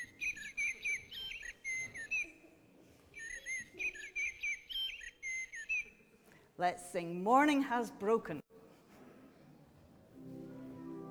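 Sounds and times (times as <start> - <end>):
blackbird singing clear fluting phrases: 0.0 - 2.3, 3.2 - 6.0
speech: 6.6 - 8.4.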